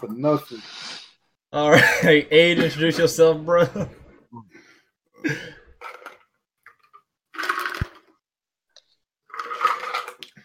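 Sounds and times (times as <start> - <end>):
speech: 0.0 - 0.8, 1.5 - 4.6, 5.2 - 5.6
person slurping and gulping water: 5.8 - 8.2, 9.2 - 10.4.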